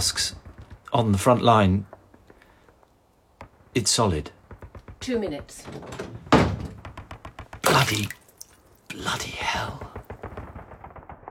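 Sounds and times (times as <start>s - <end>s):
speech: 0.0s - 2.0s, 3.7s - 4.4s, 5.0s - 6.2s, 7.9s - 8.2s, 8.9s - 10.0s
heavy trap door in a cellar floor thudding shut: 4.5s - 8.1s.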